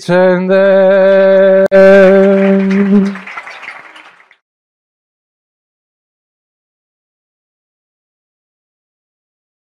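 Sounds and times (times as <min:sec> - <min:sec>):
person singing bertso improvised verse: 0:00.1 - 0:03.2.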